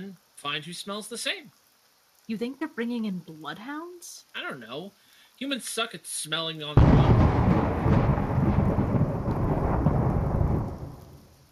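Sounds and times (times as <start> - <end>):
speech: 0.0 - 1.6, 2.3 - 8.0
steady rain: 0.0 - 11.5
deep rolling rumble of thunder: 6.8 - 11.3.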